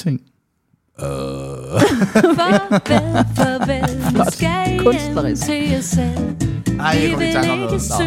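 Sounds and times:
speech: 0.0 - 0.3, 1.0 - 8.0
long low droning burp: 0.9 - 1.9
laughter: 1.7 - 5.8.

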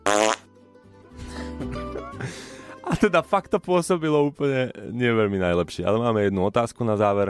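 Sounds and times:
loud buzzy fart sound effect: 0.0 - 0.5
speech: 3.0 - 7.2.

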